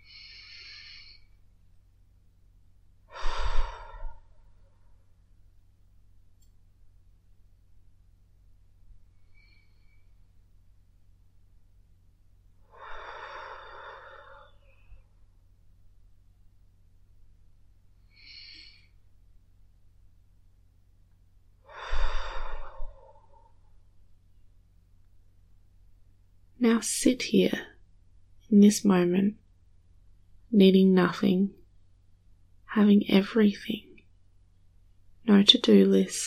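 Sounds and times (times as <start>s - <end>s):
low steady hum: 0.0s - 36.2s
deep slow breathing during a guided meditation: 3.1s - 5.1s, 9.0s - 10.4s, 12.6s - 15.3s, 21.6s - 23.8s
speech: 26.6s - 27.7s, 28.5s - 29.4s, 30.5s - 31.6s, 32.7s - 33.9s, 35.3s - 36.2s.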